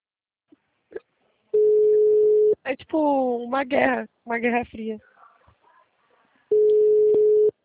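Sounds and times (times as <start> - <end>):
telephone call tone while a call is being placed: 1.6 - 2.6, 6.5 - 7.6
speech: 2.7 - 5.1.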